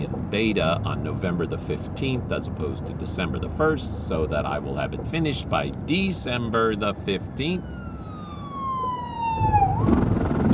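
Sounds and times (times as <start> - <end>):
speech: 0.0 - 7.9
rumbling road noise: 0.0 - 10.5
fire truck siren passing by: 6.1 - 10.5.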